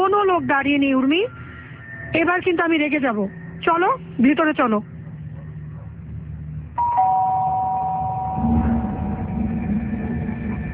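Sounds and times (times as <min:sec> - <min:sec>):
low rumble: 0:00.0 - 0:10.7
speech: 0:00.2 - 0:01.4, 0:02.1 - 0:04.9
two-tone electronic doorbell chime: 0:06.8 - 0:09.1.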